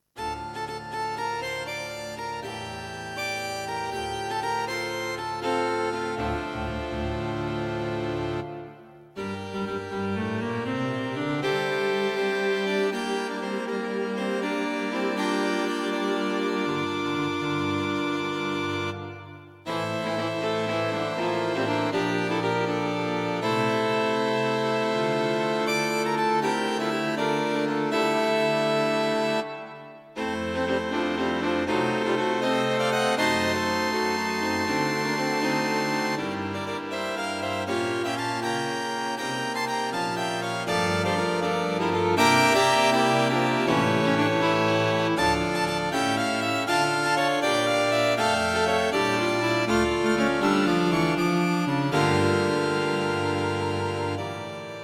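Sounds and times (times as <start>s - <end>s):
string octet playing moderato for concert performance: 0.2s - 54.8s.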